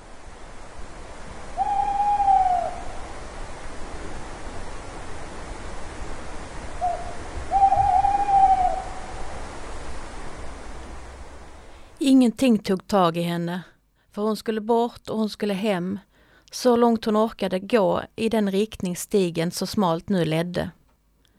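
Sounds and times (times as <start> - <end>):
steady hiss of night ambience: 0.0 - 21.3
owl hooting: 1.5 - 3.1, 6.8 - 9.3
speech: 12.2 - 20.8.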